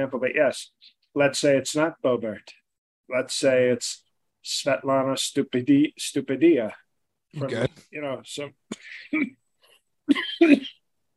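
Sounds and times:
speech: 0:00.0 - 0:09.4, 0:10.1 - 0:10.8
forceful cough with throat-clearing: 0:10.1 - 0:10.8.

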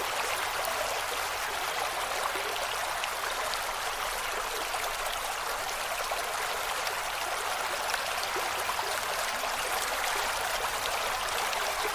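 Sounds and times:
slow calm water trickling and splashing in small drops and rivulets: 0:00.0 - 0:11.9.

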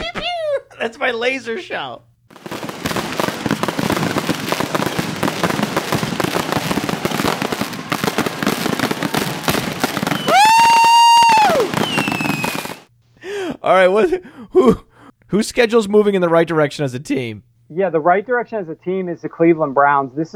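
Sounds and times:
laughter: 0:00.0 - 0:02.0, 0:13.2 - 0:15.1
fireworks crackling and popping: 0:00.0 - 0:12.9
speech: 0:00.8 - 0:02.1, 0:13.6 - 0:20.3
shrill whistling firework rocket: 0:02.4 - 0:12.9.

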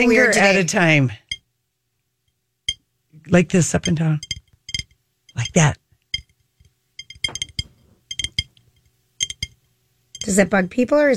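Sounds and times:
speech: 0:00.0 - 0:01.2, 0:03.3 - 0:04.3, 0:05.4 - 0:05.8, 0:10.3 - 0:11.1
fingernails tapping on glass for ASMR: 0:03.8 - 0:09.6, 0:10.2 - 0:10.4.

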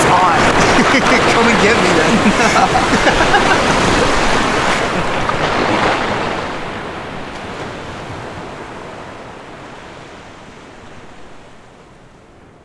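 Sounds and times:
laughter: 0:00.0 - 0:06.1
churning sea water: 0:00.0 - 0:12.6.

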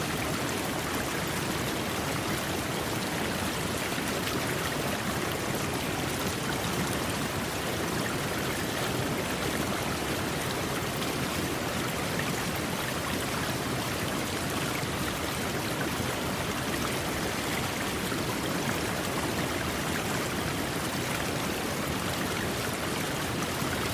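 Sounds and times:
water flowing: 0:00.0 - 0:23.9.

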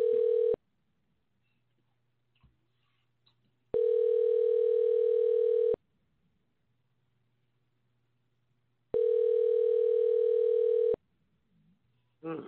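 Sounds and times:
telephone ringback tone of an unanswered call: 0:00.0 - 0:00.6, 0:03.8 - 0:05.8, 0:09.0 - 0:11.0.

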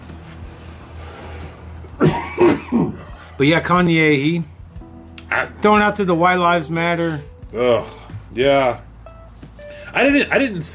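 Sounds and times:
harsh coughs: 0:02.0 - 0:03.1
speech: 0:02.0 - 0:04.5, 0:05.3 - 0:08.9, 0:10.0 - 0:10.7.

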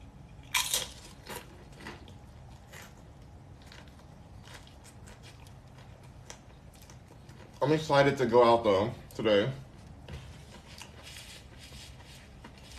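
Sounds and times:
loud crunchy bite into a crunchy vegan fish burrito with sauce: 0:00.4 - 0:07.0
speech: 0:07.7 - 0:09.6.

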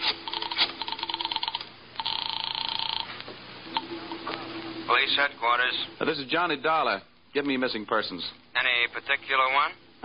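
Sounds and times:
telephone line ringing tone: 0:00.2 - 0:04.0
speech: 0:05.0 - 0:10.0.

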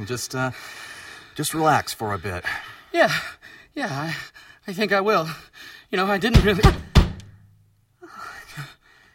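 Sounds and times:
speech: 0:00.0 - 0:06.9
heavy knocking on a door: 0:06.3 - 0:07.3.

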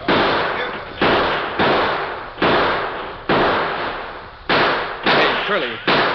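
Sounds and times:
rifle gunshots in a western shootout: 0:00.0 - 0:06.1
speech: 0:05.5 - 0:06.0.

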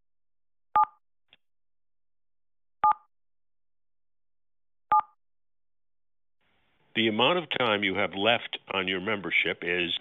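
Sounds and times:
telephone keypad tones dialing: 0:04.9 - 0:05.2
speech: 0:07.0 - 0:09.9.

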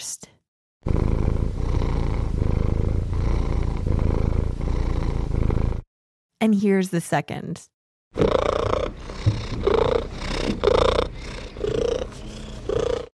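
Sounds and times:
cat purring: 0:00.8 - 0:05.9, 0:08.2 - 0:13.1
speech: 0:06.4 - 0:08.2.

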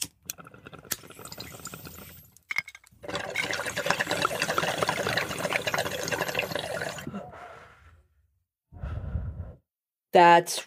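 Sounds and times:
water gurgling through a bong during inhale: 0:00.2 - 0:02.3, 0:03.0 - 0:07.4
person drawing a long inhale: 0:07.0 - 0:08.2, 0:08.8 - 0:09.6
low exhaled breath: 0:07.0 - 0:09.6.

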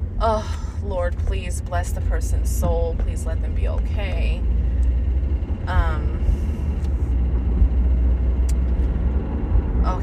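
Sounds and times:
steady low road rumble from inside a moving car: 0:00.0 - 0:10.0
speech: 0:00.2 - 0:04.6, 0:05.6 - 0:06.4, 0:09.8 - 0:10.0.

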